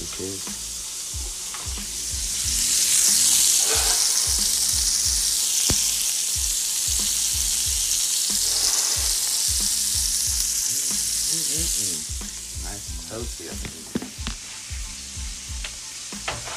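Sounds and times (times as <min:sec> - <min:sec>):
chopped breakfast food frying in a pan over medium heat: 0:00.0 - 0:16.5
speech: 0:00.2 - 0:00.6
scraping stir strokes: 0:02.5 - 0:06.0, 0:08.3 - 0:09.8.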